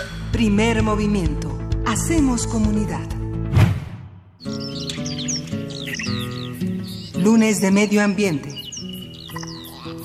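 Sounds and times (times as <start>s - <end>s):
speech: 0.4s - 3.2s, 7.2s - 8.5s
flock of small birds chirping: 4.4s - 10.0s.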